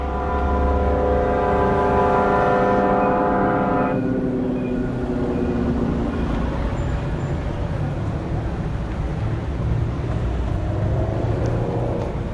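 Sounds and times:
street traffic roar of passing vehicles near a Paris metro station: 0:00.0 - 0:12.3
sustained engine-like droning tone near a Paris metro station: 0:00.0 - 0:12.3.

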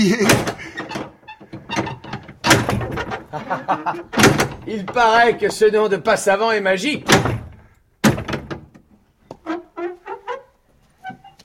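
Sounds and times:
speech: 0:00.0 - 0:00.6, 0:03.3 - 0:07.4
laughter: 0:00.0 - 0:00.9, 0:03.2 - 0:04.2
door hinges creaking: 0:00.0 - 0:05.7, 0:06.9 - 0:11.4
door latch and bolt thud: 0:00.2 - 0:03.3, 0:04.0 - 0:05.2, 0:07.0 - 0:08.8.

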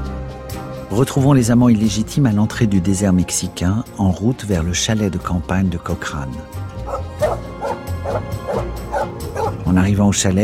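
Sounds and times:
speech: 0:00.9 - 0:07.0, 0:09.7 - 0:10.4
female dog barking and yipping at a country chalet: 0:06.9 - 0:09.6.

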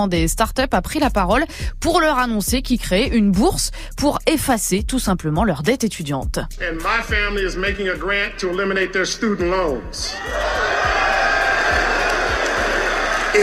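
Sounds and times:
speech: 0:00.0 - 0:10.9
large crowd at a university graduation ceremony chanting a two-beat cheer: 0:10.2 - 0:13.4.

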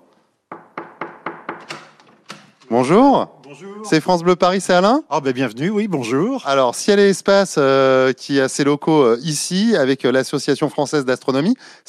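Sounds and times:
knocking on a wooden office door: 0:00.5 - 0:02.0
speech: 0:02.7 - 0:11.8.

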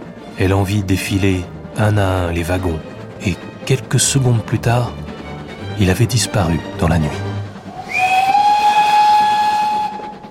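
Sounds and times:
speech: 0:00.4 - 0:05.1, 0:05.8 - 0:07.3
steam train whistle: 0:07.6 - 0:10.2.

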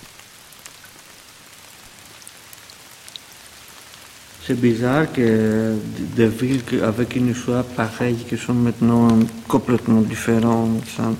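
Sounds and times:
heavy raindrops whipped by the wind: 0:00.0 - 0:11.1
wind: 0:00.0 - 0:11.1
speech: 0:04.4 - 0:11.1.

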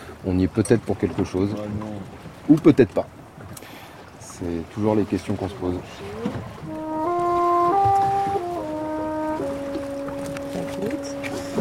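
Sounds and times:
low rumbling water noise: 0:00.0 - 0:11.6
speech: 0:00.2 - 0:03.2, 0:04.4 - 0:06.4
boat engine droning at sea: 0:03.5 - 0:11.6.

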